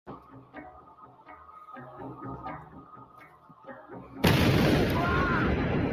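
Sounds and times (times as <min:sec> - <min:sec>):
bomb explosion: 0:04.2 - 0:05.9.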